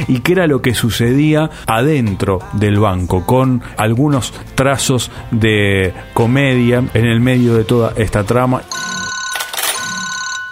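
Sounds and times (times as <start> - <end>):
speech: 0.0 - 9.1
telephone ringing with a bright electronic tone: 8.6 - 10.5.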